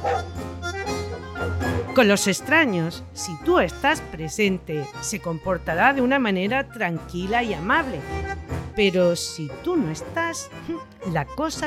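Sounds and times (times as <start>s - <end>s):
large Dogo Argentino dog barking: 0.0s - 0.4s, 1.0s - 1.9s
speech: 2.0s - 11.6s.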